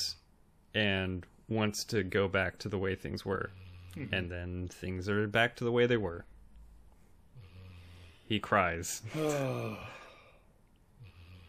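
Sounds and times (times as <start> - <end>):
speech: 0.7 - 6.3, 8.3 - 10.0
dog snoring: 3.3 - 4.2, 7.3 - 8.3, 11.0 - 11.4.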